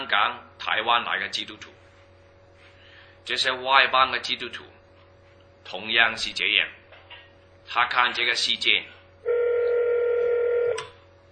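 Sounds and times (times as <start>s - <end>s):
speech: 0.1s - 1.8s, 3.2s - 4.8s, 5.6s - 6.8s, 7.7s - 9.0s
steady mid-pitched telephone line tone: 9.2s - 10.9s.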